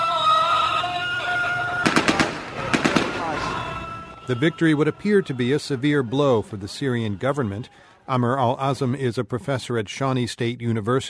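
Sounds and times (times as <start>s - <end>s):
sustained chanting and prayers by rebels in eastern Syria: 0.0s - 9.9s
celebratory gunfire by rebels capturing an army base in Mayadeen Syria: 1.8s - 3.7s
speech: 4.3s - 11.0s.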